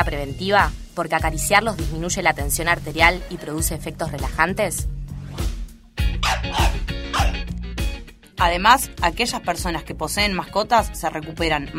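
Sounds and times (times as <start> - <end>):
speech: 0.1 - 5.0, 8.4 - 11.7
dog barking: 6.2 - 7.4.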